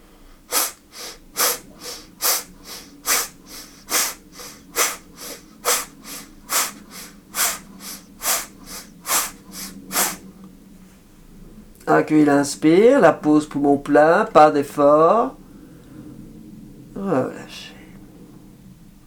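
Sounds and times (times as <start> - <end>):
sharp nasal exhalations through the left nostril during a breathing exercise: 0.0 - 10.2
speech: 11.9 - 15.4.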